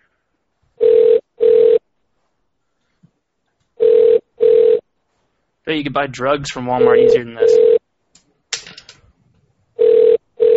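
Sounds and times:
telephone ringing with buzzing electronic bursts: 0:00.8 - 0:01.8, 0:03.8 - 0:04.8, 0:06.7 - 0:07.8, 0:09.8 - 0:10.5
speech: 0:05.7 - 0:07.8.

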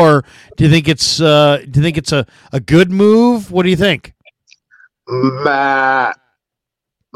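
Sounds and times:
speech: 0:00.0 - 0:04.2, 0:05.1 - 0:06.2
faint short breath: 0:00.2 - 0:00.6
person imitating a billy goat bleat: 0:05.1 - 0:06.3.

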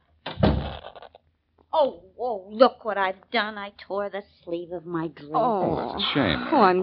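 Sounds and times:
door swinging shut with a solid thump: 0:00.2 - 0:01.1
speech: 0:01.8 - 0:06.8.

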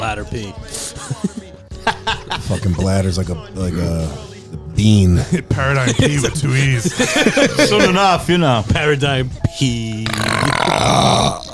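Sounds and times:
speech: 0:00.0 - 0:01.5, 0:02.5 - 0:11.4
laughter: 0:00.6 - 0:04.0, 0:05.1 - 0:08.6
loud raspy burp: 0:10.0 - 0:11.5.

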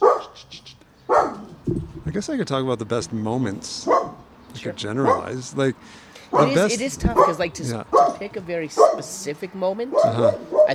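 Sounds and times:
female dog barking: 0:00.0 - 0:00.4, 0:01.1 - 0:01.6, 0:03.8 - 0:04.2, 0:05.0 - 0:05.4, 0:06.3 - 0:09.2, 0:09.9 - 0:10.7
speech: 0:01.7 - 0:10.7.

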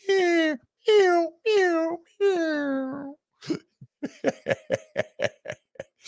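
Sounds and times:
voice mimicking mournful electronic-sounding cat crying: 0:00.0 - 0:03.2
short choppy sobbing or sniffling bursts: 0:00.0 - 0:06.0
laughter: 0:04.0 - 0:06.0.

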